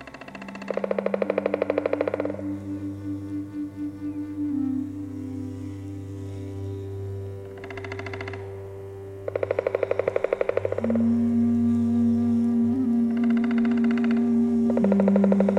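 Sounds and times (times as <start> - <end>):
Black Woodpecker drumming in the Polish Tatras: 0.0 - 3.9, 7.5 - 8.6, 9.2 - 15.5
low steady hum: 0.0 - 15.5.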